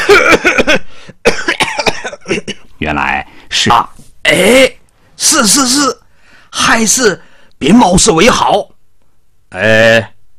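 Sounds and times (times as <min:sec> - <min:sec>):
person coughing: 0:00.0 - 0:02.7
speech: 0:03.6 - 0:08.7, 0:09.5 - 0:10.1.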